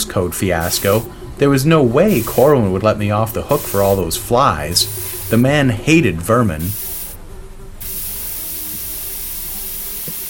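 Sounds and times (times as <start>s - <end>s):
speech: 0.0s - 6.8s
insecticide spraying at flies: 0.6s - 1.1s, 2.0s - 2.6s, 3.4s - 5.6s, 6.6s - 7.2s, 7.8s - 10.2s.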